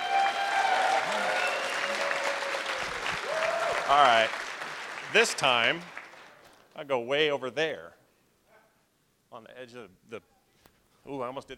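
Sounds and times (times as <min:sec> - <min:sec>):
crowd clapping: 0:00.0 - 0:06.8
speech: 0:03.9 - 0:04.4, 0:05.1 - 0:06.0, 0:06.8 - 0:08.0, 0:09.3 - 0:10.3, 0:11.0 - 0:11.5.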